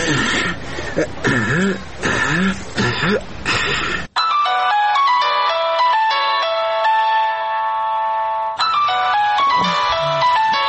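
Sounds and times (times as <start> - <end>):
person clearing throat or coughing: 0.0 - 4.1, 9.5 - 10.6
mobile phone bright electronic ringtone melody: 4.2 - 10.6.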